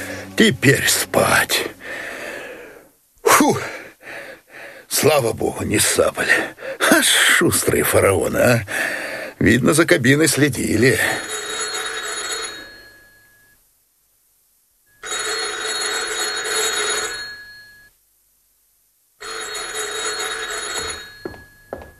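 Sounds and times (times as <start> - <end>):
speech: 0.4 - 1.7, 3.5 - 3.7, 4.9 - 11.3
telephone ringing at night with trilling bell: 10.8 - 13.6, 14.9 - 18.0, 19.2 - 21.9.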